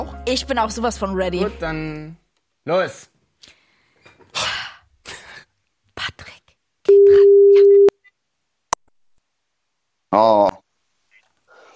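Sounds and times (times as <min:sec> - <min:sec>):
speech: 0:00.3 - 0:03.6, 0:10.1 - 0:10.6
telephone ringback tone while calling: 0:06.9 - 0:07.9.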